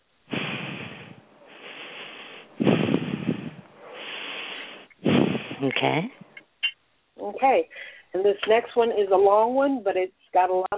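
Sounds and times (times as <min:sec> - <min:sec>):
slow deep breaths during a guided healing session: 0:00.3 - 0:05.8, 0:07.7 - 0:08.2
speech: 0:05.7 - 0:06.3, 0:07.4 - 0:10.7.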